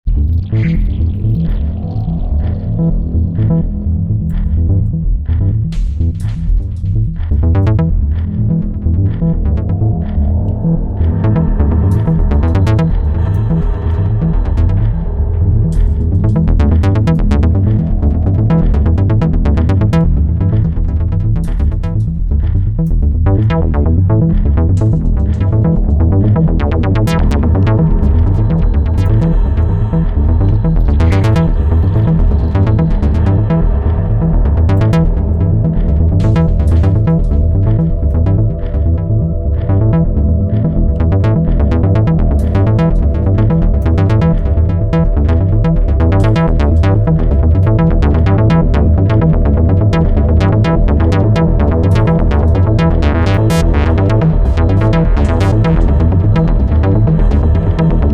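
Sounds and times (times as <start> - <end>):
Korg Wavestate synthesizer: 0.0 - 58.1.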